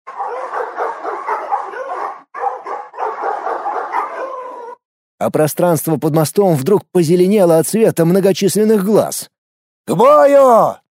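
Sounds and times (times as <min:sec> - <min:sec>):
many dogs barking beneath a bridge in the evening: 0:00.1 - 0:04.8
speech: 0:05.2 - 0:10.8.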